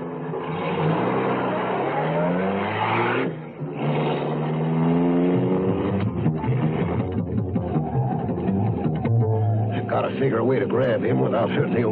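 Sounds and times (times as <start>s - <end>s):
car engine roaring and revving hard as the vehicle speeds away: 0.0s - 11.8s
car tires squealing: 0.0s - 11.8s
speech: 10.2s - 11.8s.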